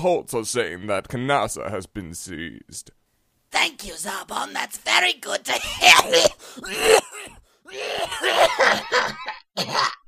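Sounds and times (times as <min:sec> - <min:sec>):
speech: 0:00.0 - 0:10.0
person coughing: 0:05.6 - 0:10.0.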